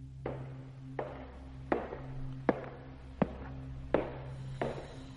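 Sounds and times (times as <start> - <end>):
footsteps of someone walking in a room: 0.2 - 5.1.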